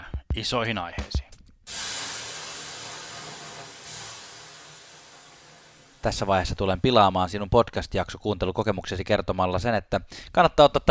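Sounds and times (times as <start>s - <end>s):
speech: 0.4s - 1.2s, 6.0s - 10.8s
steam hissing from water thrown on hot sauna stones: 1.7s - 6.6s.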